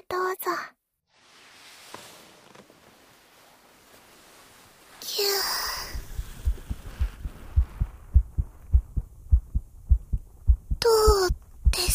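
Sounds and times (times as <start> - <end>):
heartbeat heard through a stethoscope: 5.9 - 11.9.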